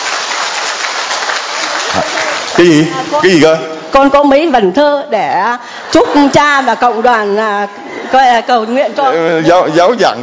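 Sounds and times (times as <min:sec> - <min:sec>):
large church audience applauding: 0:00.0 - 0:03.5
speech: 0:02.0 - 0:10.2.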